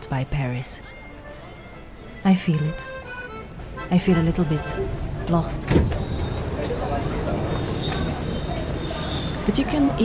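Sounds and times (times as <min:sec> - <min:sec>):
speech: 0:00.1 - 0:01.0, 0:02.2 - 0:03.0, 0:03.8 - 0:07.2, 0:09.5 - 0:10.0
subway train rumbling in a metro station: 0:03.6 - 0:10.0
high metallic squeal of subway train wheels on rails: 0:05.8 - 0:10.0.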